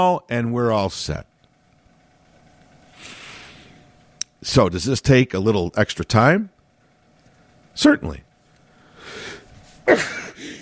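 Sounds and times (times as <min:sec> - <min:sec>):
speech: 0:00.0 - 0:01.3, 0:04.4 - 0:06.5, 0:07.8 - 0:08.3, 0:09.9 - 0:10.2
person sneezing: 0:09.8 - 0:10.5.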